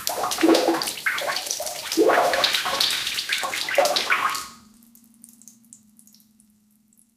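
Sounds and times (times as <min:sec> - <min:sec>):
loud wet bubbly fart on a toilet: 0:00.0 - 0:04.5.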